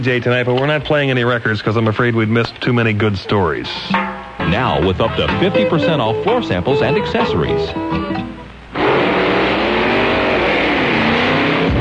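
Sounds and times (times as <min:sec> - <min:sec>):
speech: 0:00.0 - 0:08.3
car accelerating out of a parking lot: 0:08.7 - 0:11.8.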